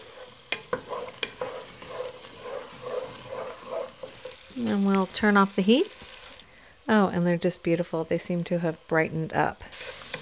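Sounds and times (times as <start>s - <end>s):
sauce bubbling and sizzling in a pan: 0.0s - 10.1s
speech: 4.6s - 6.1s, 6.9s - 9.7s.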